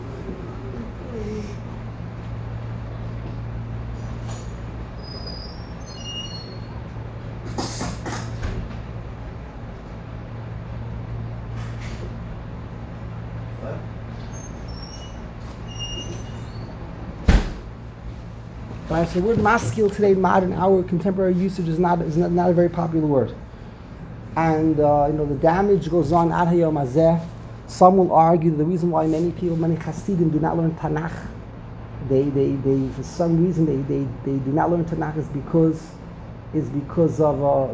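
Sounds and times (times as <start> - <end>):
steady low mechanical hum: 0.0 - 37.7
door creaking open with a scraping squeal: 4.2 - 6.9, 14.2 - 17.7
door shutting with a sharp thud: 17.2 - 17.7
speech: 18.9 - 23.4, 24.4 - 31.4, 32.0 - 37.7.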